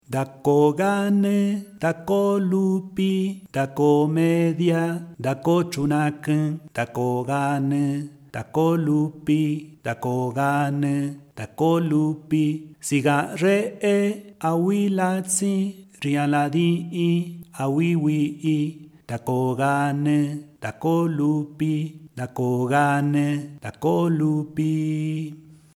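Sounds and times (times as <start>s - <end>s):
person singing: 0.0s - 25.7s.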